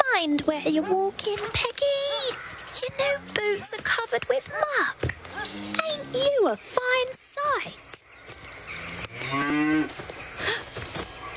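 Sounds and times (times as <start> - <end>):
speech: 0.2 - 2.0, 2.8 - 8.0
rustling and shuffling: 0.2 - 11.3
cow mooing: 8.7 - 9.9.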